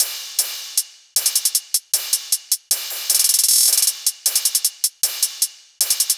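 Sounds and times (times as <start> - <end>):
hybrid trap EDM drum top at 155 bpm: 0.0 - 6.1.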